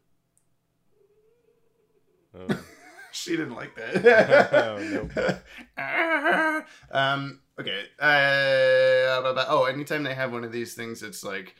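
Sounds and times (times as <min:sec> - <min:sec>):
cat meowing: 0:01.0 - 0:02.2
speech: 0:02.3 - 0:11.5
laughter: 0:02.4 - 0:06.7.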